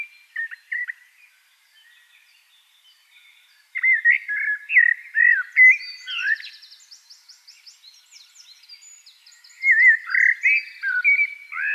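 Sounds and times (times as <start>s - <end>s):
Eurasian blackbird Turdus merula singing fluty notes: 0.0s - 11.7s.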